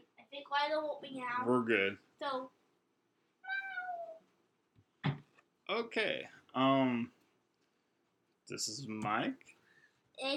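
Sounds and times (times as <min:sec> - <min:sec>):
speech: 0:00.4 - 0:02.6, 0:05.7 - 0:07.2, 0:08.5 - 0:09.6, 0:10.2 - 0:10.3
cat giving a drawn-out meow: 0:03.4 - 0:04.2
soft thump: 0:05.0 - 0:05.3.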